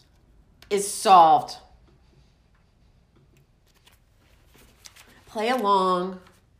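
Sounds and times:
speech: 0.7s - 1.6s, 5.3s - 6.5s
paper being crumpled: 3.6s - 6.4s.

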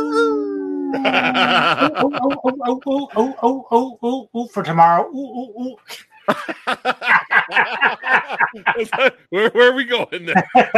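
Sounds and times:
voice giving a wolf-like howl: 0.0s - 2.3s
laughter: 0.9s - 3.8s, 6.2s - 10.7s
speech: 0.9s - 10.7s.

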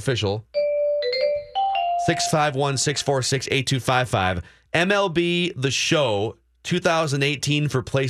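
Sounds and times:
speech: 0.0s - 0.6s, 2.1s - 8.0s
baseball radio chime jingle: 0.6s - 3.4s.

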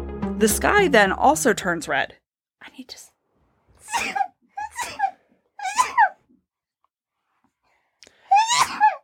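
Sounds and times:
speech: 0.4s - 3.1s, 3.9s - 4.3s
person sneezing high-pitched and squeaky: 3.8s - 6.2s, 8.3s - 9.0s.

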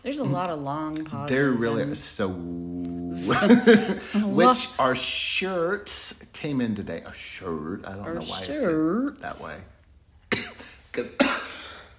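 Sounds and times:
speech: 0.0s - 9.7s, 10.4s - 11.4s
laughter: 3.2s - 4.4s
person coughing: 10.3s - 11.9s.

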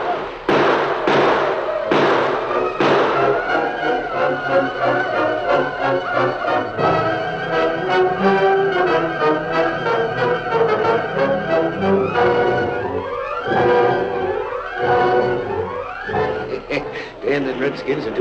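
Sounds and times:
rifle shots fired during a battle at a train: 0.0s - 3.8s
rising wailing tones: 1.4s - 17.8s
laughter: 16.1s - 18.1s
speech: 17.8s - 18.1s.

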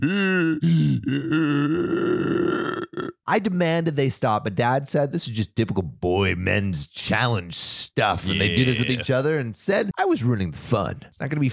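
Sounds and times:
person imitating asthmatic panting with strained groans and grunts: 0.0s - 3.3s, 8.2s - 9.1s
speech: 0.0s - 11.5s.

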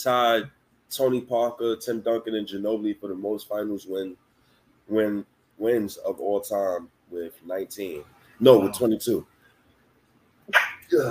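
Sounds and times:
speech: 0.0s - 4.2s, 4.9s - 9.3s, 10.5s - 11.0s
single sharp sneeze: 10.5s - 11.0s.

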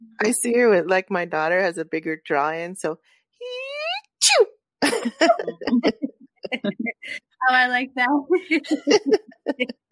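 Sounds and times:
speech: 0.2s - 3.6s, 4.3s - 9.8s
person imitating a soft sneeze: 3.5s - 4.6s
light laughter: 4.8s - 7.0s, 8.6s - 9.7s
chatter: 5.0s - 7.2s, 8.2s - 9.7s.

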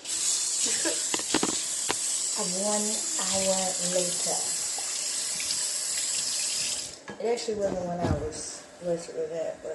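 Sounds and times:
toilet flushing cigarettes away: 0.0s - 7.0s
speech: 2.4s - 4.6s, 7.2s - 9.7s.

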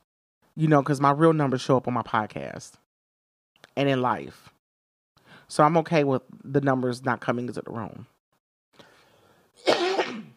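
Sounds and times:
speech: 0.6s - 2.8s, 3.8s - 4.6s, 5.5s - 8.1s
person coughing: 9.6s - 10.3s.

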